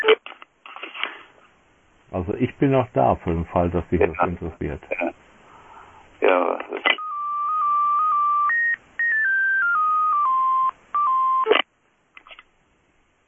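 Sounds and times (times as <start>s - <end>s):
speech: 2.1s - 5.2s
electronic telephone dialing tones beeping: 6.9s - 11.6s.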